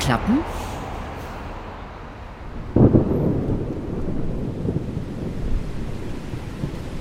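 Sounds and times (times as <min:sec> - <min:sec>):
windy rain-like wash of noise: 0:00.0 - 0:06.9
speech: 0:00.1 - 0:00.6
rumbling thunder of an approaching thunderstorm: 0:02.4 - 0:06.9.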